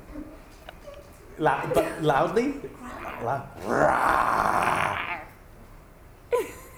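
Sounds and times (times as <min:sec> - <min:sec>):
laughter: 0:01.4 - 0:03.4
speech: 0:01.4 - 0:05.1
child imitating a bear growl: 0:02.8 - 0:05.4.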